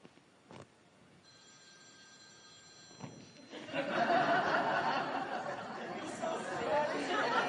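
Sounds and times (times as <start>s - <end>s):
telephone ringing with a steady electronic tone: 1.3s - 5.2s
room full of people chattering and laughing loudly: 3.7s - 7.4s.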